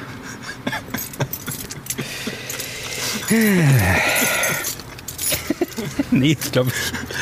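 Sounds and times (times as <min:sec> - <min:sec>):
keys on a key ring jangling at a door lock: 0:00.9 - 0:06.6
speech: 0:03.3 - 0:04.4, 0:06.1 - 0:07.2
laughter: 0:05.3 - 0:07.2.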